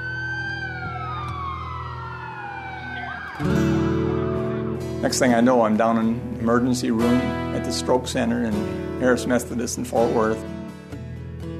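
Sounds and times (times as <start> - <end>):
ambulance siren wailing: 0.0 - 5.0
speech: 3.4 - 3.8, 5.0 - 10.6.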